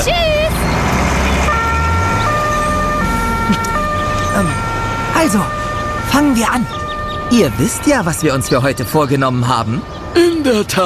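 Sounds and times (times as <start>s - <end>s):
dense rumble of traffic noise: 0.0s - 10.8s
emergency vehicle siren wailing: 0.0s - 10.8s
speech: 3.5s - 3.7s, 4.4s - 4.6s, 5.2s - 10.8s.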